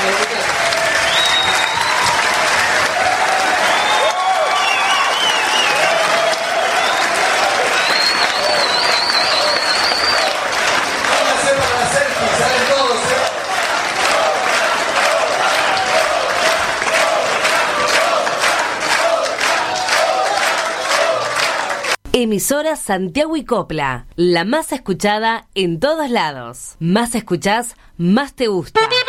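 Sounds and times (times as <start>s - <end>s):
audience applause and cheering for a live band: 0.0s - 22.0s
speech: 22.2s - 29.0s.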